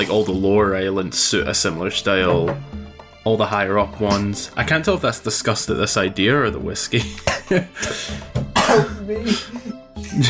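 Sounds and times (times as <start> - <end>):
speech: 0.0 - 9.6
person coughing into the microphone: 7.2 - 10.2
throat clearing: 8.6 - 9.5.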